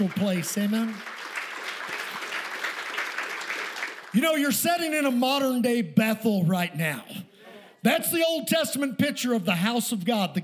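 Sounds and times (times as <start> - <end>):
speech: 0.0 - 1.2, 4.1 - 10.4
church congregation clapping hands during a worship service: 0.0 - 5.0.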